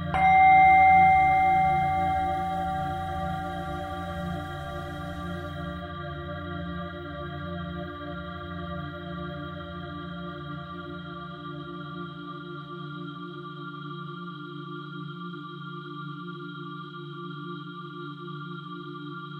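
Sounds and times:
singing bowl humming with low and middle tones: 0:00.2 - 0:05.8.

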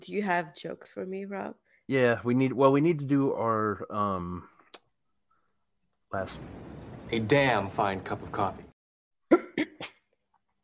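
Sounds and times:
speech: 0:00.0 - 0:04.5, 0:06.1 - 0:08.6
podcast host coughing: 0:09.3 - 0:10.1.

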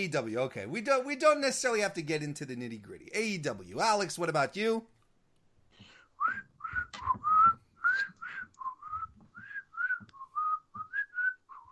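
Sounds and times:
speech: 0:00.0 - 0:05.0
person whistling a bouncy melody: 0:06.2 - 0:11.7.

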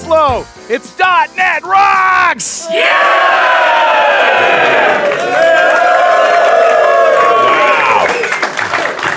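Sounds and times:
speech: 0:00.1 - 0:06.8
lively conference crowd in Oslo cheering and whooping: 0:02.6 - 0:09.1
people clapping: 0:03.6 - 0:09.1.

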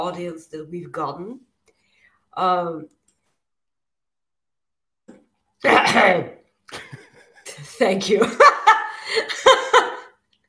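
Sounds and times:
speech: 0:00.0 - 0:01.5, 0:02.3 - 0:03.0, 0:05.6 - 0:07.0, 0:07.6 - 0:09.6
person coughing hard: 0:05.6 - 0:06.4.

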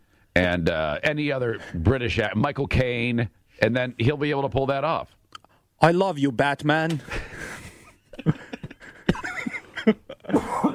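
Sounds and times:
speech: 0:00.4 - 0:05.2, 0:05.8 - 0:07.3
person laughing: 0:07.1 - 0:10.7
person coughing after laughing: 0:10.2 - 0:10.7.

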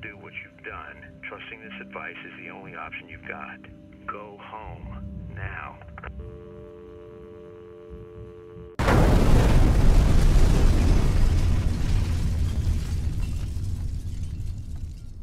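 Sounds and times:
speech: 0:00.8 - 0:06.6
crackling explosion debris: 0:08.8 - 0:15.2
explosion with deep rumbling roar: 0:08.8 - 0:15.2.

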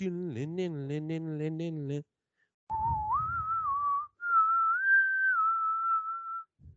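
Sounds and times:
voice speaking: 0:00.0 - 0:02.0
person whistling eerie TV theme melody: 0:02.7 - 0:06.6.

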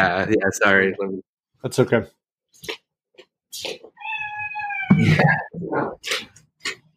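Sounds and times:
speech: 0:00.0 - 0:02.8, 0:05.0 - 0:06.3
cat meowing and yowling: 0:03.9 - 0:05.4.

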